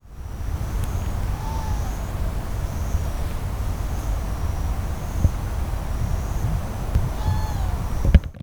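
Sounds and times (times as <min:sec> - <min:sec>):
Japanese scops owl calling in Toyanogata Park, Niigata: 0:00.0 - 0:08.4.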